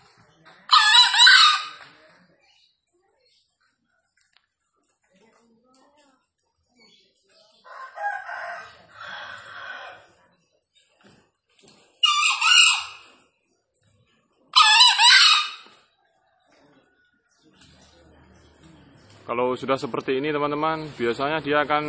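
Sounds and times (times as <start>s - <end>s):
wild green junglefowl crowing while free-ranging: 0.7s - 1.9s, 7.7s - 10.1s, 12.0s - 13.1s, 14.6s - 15.8s
speech: 19.3s - 21.8s.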